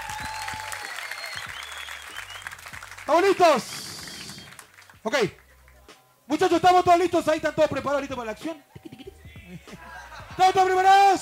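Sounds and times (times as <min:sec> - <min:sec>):
whistles from crowd: 0:00.0 - 0:02.7, 0:03.7 - 0:04.6
crowd applauding loudly: 0:00.0 - 0:05.8
speech: 0:03.1 - 0:03.8, 0:05.0 - 0:05.4, 0:06.3 - 0:08.7, 0:10.4 - 0:11.2
laughter: 0:08.8 - 0:11.2.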